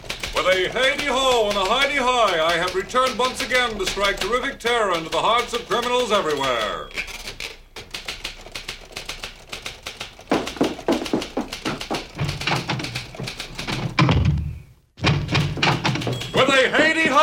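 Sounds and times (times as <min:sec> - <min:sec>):
rapid clatter of taps and clicks: 0:00.0 - 0:14.2, 0:15.0 - 0:17.2
speech: 0:00.4 - 0:07.0
door closing with heavy thud: 0:10.3 - 0:16.4.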